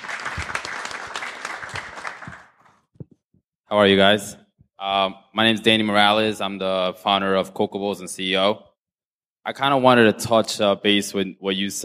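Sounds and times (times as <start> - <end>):
crowd applauding: 0.0 - 2.8
speech: 3.7 - 8.7, 9.4 - 11.8.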